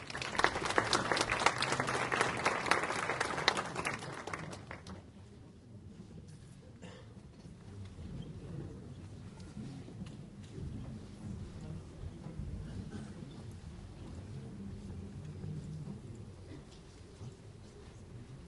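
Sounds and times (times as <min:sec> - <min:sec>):
audience applause welcoming a guest speaker at a formal ceremony: 0:00.0 - 0:05.1
low murmur: 0:00.0 - 0:18.4.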